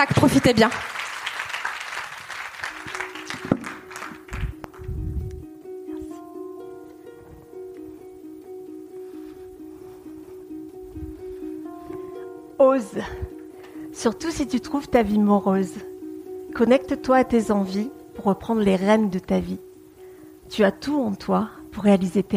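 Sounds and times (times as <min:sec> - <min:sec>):
speech: 0:00.0 - 0:01.0, 0:12.8 - 0:13.3, 0:14.0 - 0:15.9, 0:16.6 - 0:19.6, 0:20.5 - 0:22.3
crowd applauding: 0:00.0 - 0:04.9
instrumental music with sustained tones: 0:01.3 - 0:22.3.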